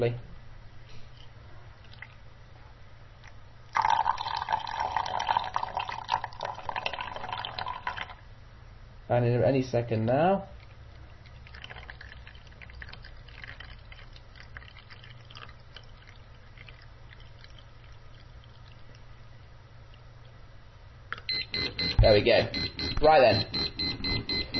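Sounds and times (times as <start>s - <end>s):
speech: 0.0s - 0.3s, 9.1s - 10.6s, 22.2s - 23.7s
faint low hum: 0.0s - 24.5s
liquid pouring into a jug: 3.2s - 8.2s, 10.6s - 20.0s
liquid level indicator beeping and vibrating: 21.3s - 24.5s.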